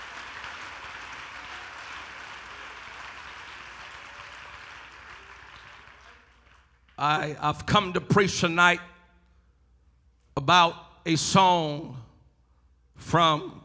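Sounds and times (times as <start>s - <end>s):
large audience clapping at an evening sermon: 0.0s - 7.3s
speech: 7.0s - 8.9s, 10.4s - 12.1s, 13.0s - 13.6s.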